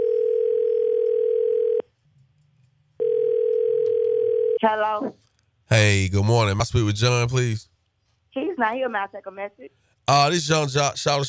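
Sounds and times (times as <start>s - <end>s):
telephone dial tone before a call: 0.0s - 1.8s, 3.0s - 4.6s
speech: 4.6s - 7.7s, 8.6s - 11.2s.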